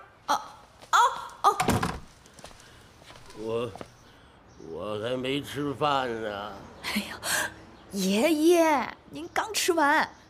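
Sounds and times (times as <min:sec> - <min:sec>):
door shutting with solid thuds and rattling: 0:01.6 - 0:02.1
speech: 0:03.4 - 0:03.9, 0:04.7 - 0:10.2.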